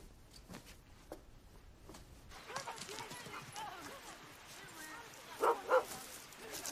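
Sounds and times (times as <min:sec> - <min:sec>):
faint voices outdoors: 0:02.3 - 0:06.6
dog barking while being played with: 0:05.4 - 0:06.0.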